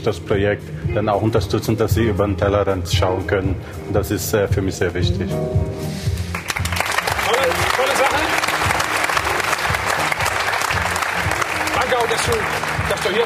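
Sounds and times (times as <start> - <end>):
speech: 0.0 - 6.1
sustained applause from a sizable audience: 6.3 - 13.2.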